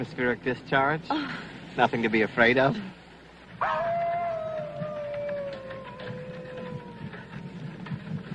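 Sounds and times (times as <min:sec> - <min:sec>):
speech: 0:00.0 - 0:03.0
steady low rumbling background: 0:00.0 - 0:08.3
wolf howling: 0:03.6 - 0:07.9.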